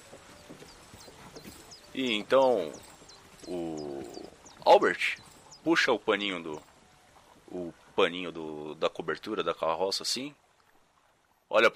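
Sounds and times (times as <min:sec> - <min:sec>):
ox stamping hooves: 0:00.0 - 0:08.0
speech: 0:02.0 - 0:02.9, 0:03.5 - 0:06.7, 0:07.5 - 0:10.4, 0:11.5 - 0:11.7.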